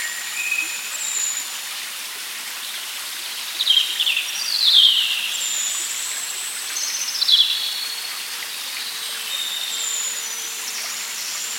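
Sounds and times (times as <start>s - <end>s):
Holy Brook flowing in a wood in Devon: 0.0s - 11.5s.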